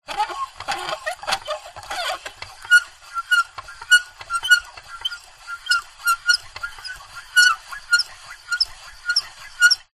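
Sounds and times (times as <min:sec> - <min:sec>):
plastic handle squeaking as it turns: 0:00.1 - 0:07.5.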